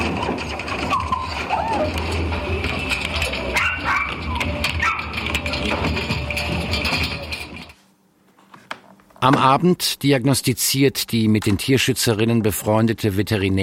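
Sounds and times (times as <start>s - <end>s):
puppies in boxes at a sales venue whimpering and yipping: 0.0s - 5.6s
steady clatter of the crowd at a sales venue: 0.0s - 7.7s
speech: 9.2s - 13.6s.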